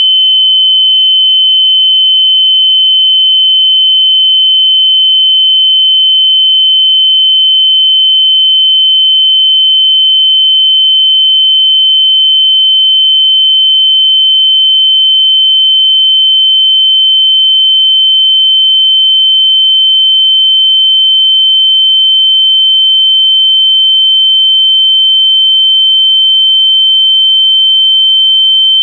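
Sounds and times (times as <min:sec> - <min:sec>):
logarithmic sine wave sweep: 0:00.0 - 0:28.8.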